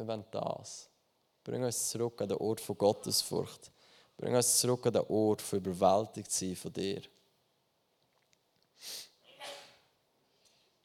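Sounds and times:
speech: 0.0s - 0.9s, 1.5s - 7.2s, 8.8s - 9.6s
sharp breathy sneezes: 9.2s - 9.9s.

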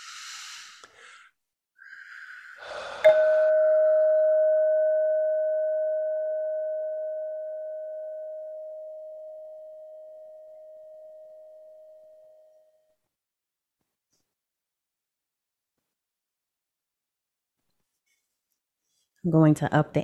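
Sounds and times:
soft breathy noise: 0.0s - 3.5s
single chime struck and ringing: 3.0s - 12.7s
speech: 19.3s - 20.0s.

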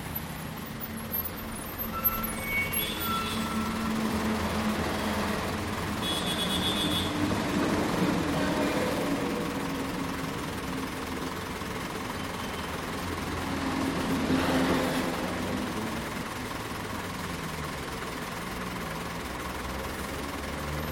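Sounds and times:
low rumble of city-centre traffic in Bogota: 0.0s - 20.9s
vehicles passing: 0.0s - 20.9s
bright whine: 1.4s - 4.6s.

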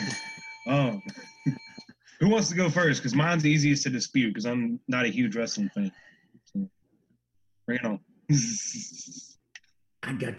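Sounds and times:
bell ringing with bright sustained tones: 0.0s - 3.0s
speech: 2.2s - 6.8s, 7.7s - 9.3s, 10.0s - 10.3s.

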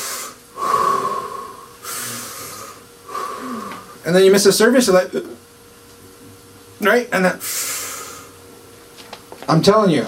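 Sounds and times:
person breathing in and out loudly and deliberately: 0.0s - 4.0s, 7.4s - 8.4s
speech: 4.1s - 5.4s, 6.8s - 7.6s, 9.5s - 10.0s.

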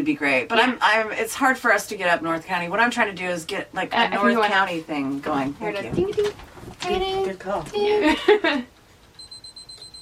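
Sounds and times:
speech: 0.0s - 8.8s
camera 10-second self-timer beeping: 9.2s - 10.0s.

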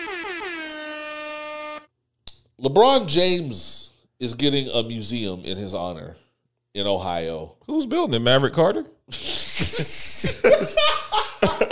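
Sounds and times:
loud blaring air horn blasts: 0.0s - 1.9s
speech: 2.6s - 6.2s, 6.8s - 11.6s
laughter: 9.1s - 11.6s.

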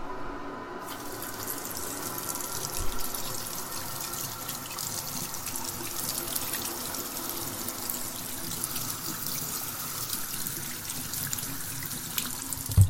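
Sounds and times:
water running from a tap while hands are washed: 0.8s - 12.8s.

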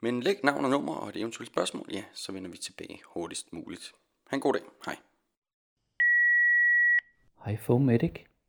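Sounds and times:
speech: 0.0s - 5.1s, 7.4s - 8.3s
telephone answering machine beep: 6.0s - 7.0s.

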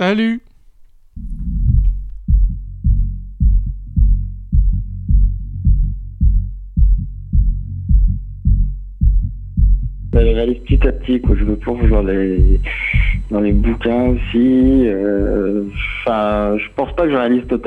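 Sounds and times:
speech: 0.0s - 0.5s, 10.2s - 17.6s
dull rumbling wash: 1.2s - 2.6s
deep heartbeat: 1.2s - 17.6s.

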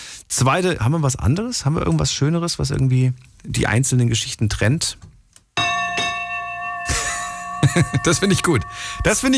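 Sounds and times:
speech: 0.3s - 5.1s, 7.7s - 9.3s
ship's bell ringing: 5.6s - 9.3s
laughter: 6.9s - 8.4s.

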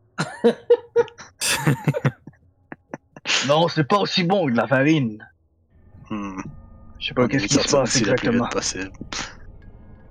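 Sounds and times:
voice performing choking coughs of a giant coughing up sand: 0.2s - 0.7s, 1.4s - 2.2s
speech: 0.4s - 2.2s, 3.5s - 5.3s, 6.1s - 9.3s
laughter: 0.4s - 3.5s.

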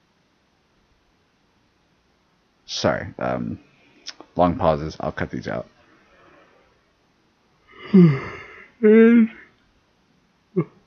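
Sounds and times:
speech: 2.8s - 3.7s, 4.4s - 5.8s, 7.9s - 9.4s, 10.6s - 10.8s
person yawning: 7.7s - 9.5s
short vocal sound: 7.7s - 9.5s, 10.6s - 10.8s.

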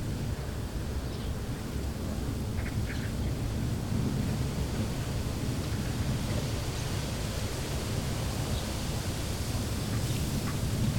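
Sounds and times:
wind blowing through bare trees: 0.0s - 10.9s.

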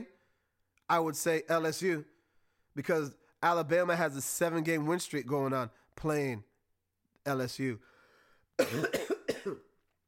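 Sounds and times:
speech: 0.9s - 2.1s, 2.8s - 6.5s, 7.2s - 7.9s, 8.6s - 9.7s
person coughing harshly: 8.6s - 9.8s.

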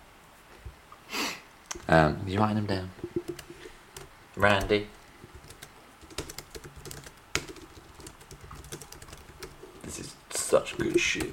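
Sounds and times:
speech: 1.9s - 3.0s, 4.4s - 5.0s, 10.5s - 11.3s
typing on a computer keyboard: 3.0s - 11.3s.

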